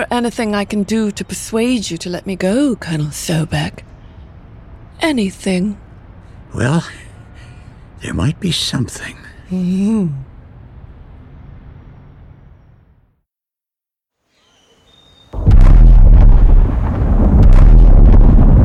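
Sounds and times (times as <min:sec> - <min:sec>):
speech: 0:00.0 - 0:03.9, 0:05.0 - 0:05.8, 0:06.5 - 0:07.1, 0:08.0 - 0:10.3
sonic boom with deep rumbling roar: 0:15.4 - 0:18.6.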